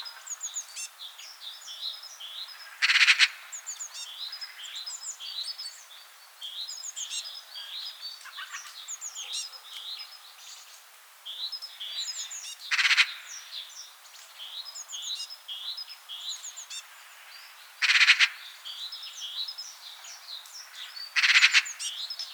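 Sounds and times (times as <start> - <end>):
magpie call and song: 2.8 - 3.5, 17.8 - 18.5, 21.2 - 21.9.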